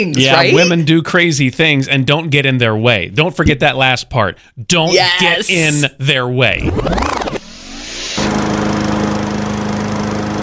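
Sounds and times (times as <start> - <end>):
speech: 0.0 - 7.4
lawn mower engine running: 8.2 - 10.4.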